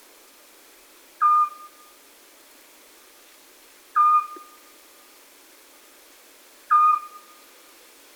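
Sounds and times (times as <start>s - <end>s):
Eurasian scops owl short piping whistle: 1.2s - 1.9s, 4.0s - 4.6s, 6.7s - 7.4s.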